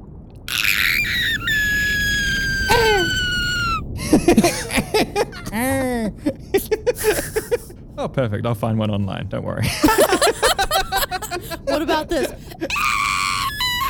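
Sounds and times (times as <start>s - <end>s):
sustained piercing high-pitched scream: 0.5s - 3.9s, 12.6s - 13.8s
burst of excited voices and vocal sounds: 0.5s - 7.6s, 9.7s - 13.8s
laughter: 4.0s - 7.7s, 9.6s - 13.1s
speech: 8.0s - 10.6s, 11.4s - 12.8s.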